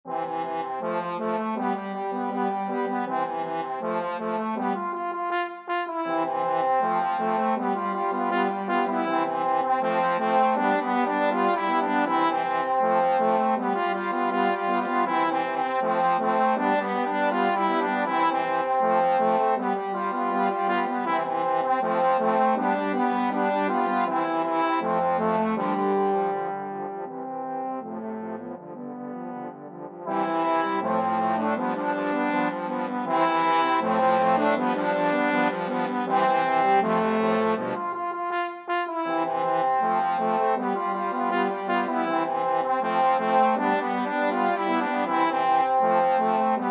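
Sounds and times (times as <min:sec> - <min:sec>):
trombone quartet playing: 0:00.1 - 0:46.7.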